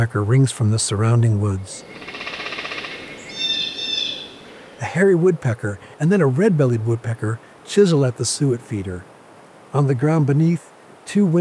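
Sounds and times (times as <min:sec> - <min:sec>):
speech: 0:00.0 - 0:02.2, 0:04.8 - 0:09.1, 0:09.7 - 0:11.4
chickadee spring song in winter woods: 0:01.8 - 0:04.8.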